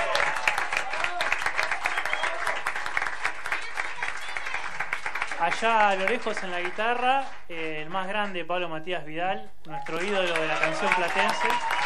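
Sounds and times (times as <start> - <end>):
crowd clapping and applauding: 0.0 - 7.4, 9.8 - 11.8
speech: 5.4 - 11.7.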